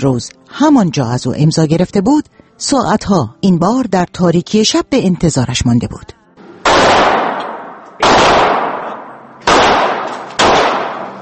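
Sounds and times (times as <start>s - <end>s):
speech: 0.0s - 6.2s
.38 pistol gunshots: 6.6s - 11.2s.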